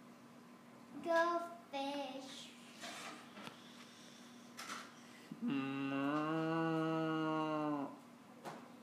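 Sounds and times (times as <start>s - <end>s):
speech: 1.0s - 2.6s, 5.4s - 6.0s
person imitating a cow with one long droning moo: 5.4s - 8.0s.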